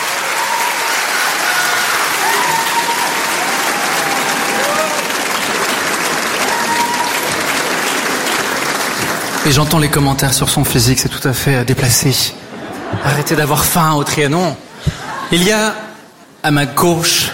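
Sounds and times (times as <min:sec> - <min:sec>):
concert audience applause and cheering: 0:00.0 - 0:11.0
speech: 0:09.5 - 0:15.8, 0:16.4 - 0:17.3
laughter: 0:12.1 - 0:13.8, 0:14.6 - 0:15.4.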